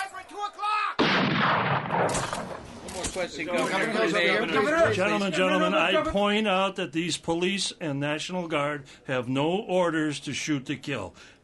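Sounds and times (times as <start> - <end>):
speech: 0.4 - 0.7, 3.1 - 11.4
sporadic gunfire across the street from a hospital during street unrest: 1.0 - 3.3.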